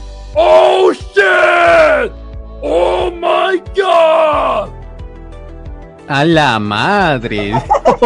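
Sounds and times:
man imitating cartoonish anguished scream: 0.4s - 4.7s
speech: 6.1s - 8.0s
laughter: 7.2s - 8.0s.

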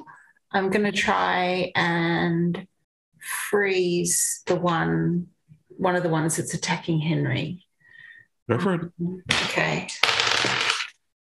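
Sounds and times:
speech: 0.5s - 7.6s, 8.5s - 10.2s
two dice rattling and tumbling across a table during a tabletop game: 10.0s - 11.0s.

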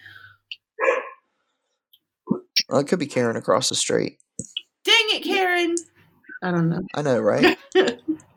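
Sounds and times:
faint dog yip: 0.8s - 1.2s
dog barking: 0.8s - 1.3s
speech: 2.7s - 4.5s, 5.4s - 8.0s.

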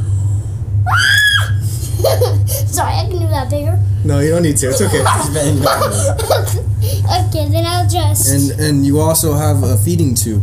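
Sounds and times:
steady low hum: 0.0s - 10.4s
child screaming loudly: 0.9s - 1.6s
speech: 2.8s - 10.4s
laughter: 4.6s - 6.7s.

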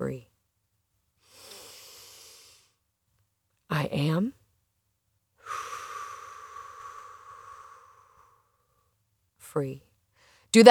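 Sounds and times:
speech: 0.0s - 0.3s, 3.8s - 4.4s, 9.5s - 9.9s, 10.5s - 10.7s
person breathing deeply into the belly and lungs: 1.2s - 2.8s, 5.4s - 8.8s.

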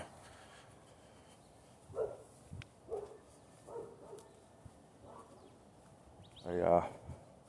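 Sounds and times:
dog barking in a yard: 1.9s - 2.3s, 2.9s - 4.4s, 5.0s - 5.4s
speech: 6.5s - 7.0s.

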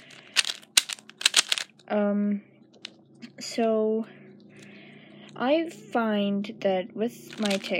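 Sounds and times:
Rubik's Cube being turned clicking: 0.0s - 1.7s, 7.3s - 7.7s
speech: 1.9s - 2.5s, 3.4s - 4.2s, 5.4s - 7.7s.

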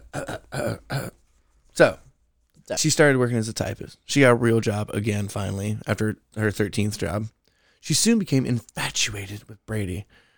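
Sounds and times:
person clearing throat: 0.0s - 1.2s
speech: 1.8s - 2.0s, 2.7s - 10.2s.

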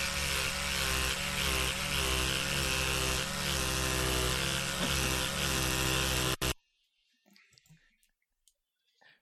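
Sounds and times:
electric toothbrush buzzing: 0.0s - 6.6s.

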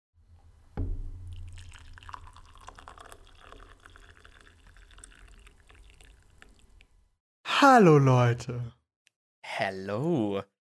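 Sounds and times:
short bump: 0.7s - 1.5s
tea pouring into a cup: 1.3s - 7.0s
speech: 7.6s - 8.8s, 9.6s - 10.5s.

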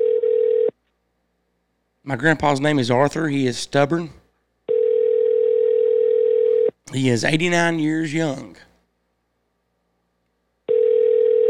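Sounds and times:
landline telephone ringing tone through the earpiece: 0.0s - 0.8s, 4.7s - 6.8s, 10.7s - 11.4s
speech: 2.1s - 4.2s, 6.9s - 8.7s.

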